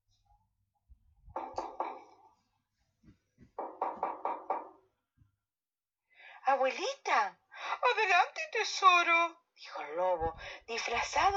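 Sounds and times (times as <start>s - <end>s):
knocking on a door: 1.3s - 2.2s, 3.4s - 4.9s
speech: 6.5s - 11.3s.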